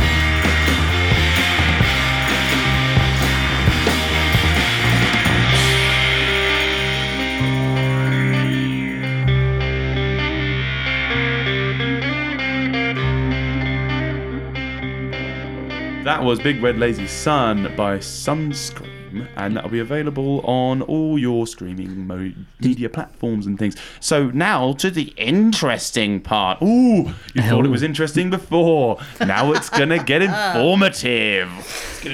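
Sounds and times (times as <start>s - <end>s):
hazy psychedelic rock music with effected guitars and bass drone: 0.0s - 20.8s
speech: 16.2s - 32.1s
laughter: 29.0s - 32.1s.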